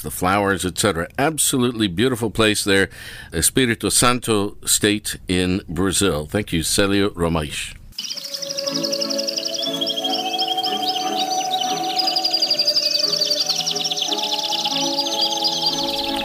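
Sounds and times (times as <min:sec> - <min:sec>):
speech: 0:00.0 - 0:08.8
canaries singing: 0:08.0 - 0:16.2
sustained musical tones: 0:08.0 - 0:16.2.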